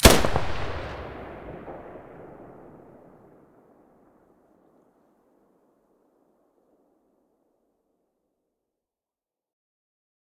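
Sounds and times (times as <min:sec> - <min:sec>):
gunshot: 0:00.0 - 0:03.2.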